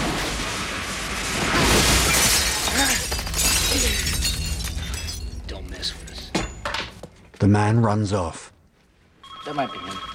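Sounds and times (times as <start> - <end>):
glass doors shattering as a man is thrown through them: 0.0 - 5.6
speech: 7.4 - 8.5, 9.5 - 10.1.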